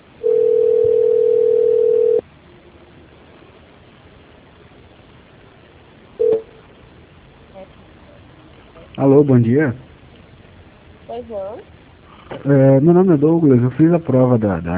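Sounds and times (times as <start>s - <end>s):
faint hiss: 0.0s - 14.7s
telephone call connecting tone: 0.2s - 2.2s, 6.2s - 6.6s
speech: 9.1s - 9.9s, 11.2s - 14.7s.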